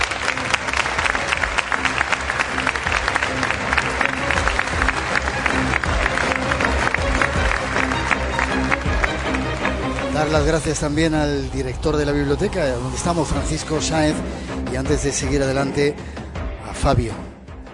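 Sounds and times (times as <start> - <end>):
audience applause at a library event in Tenerife: 0.0 - 11.1
speech: 10.3 - 16.2, 16.8 - 17.3.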